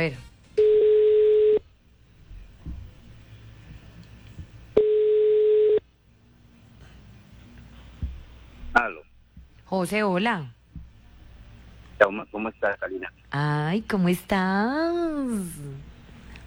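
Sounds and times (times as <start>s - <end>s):
speech: 0.0s - 0.3s, 9.8s - 10.6s, 12.0s - 15.9s
telephone ringback tone while placing a call: 0.6s - 1.6s, 4.8s - 5.8s.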